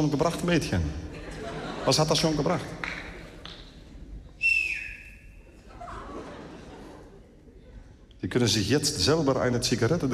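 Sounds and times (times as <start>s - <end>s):
speech: 0.0s - 1.1s, 1.8s - 2.8s, 8.2s - 10.1s
faint noise: 0.0s - 10.1s
laughter: 0.9s - 3.7s, 5.5s - 8.1s
person whistling a steady high note: 4.4s - 5.4s.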